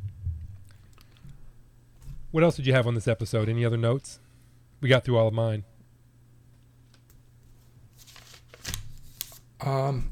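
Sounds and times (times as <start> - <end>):
speech: 2.3 - 4.2, 4.8 - 5.7, 9.7 - 10.0
paper being ruffled: 7.6 - 9.5.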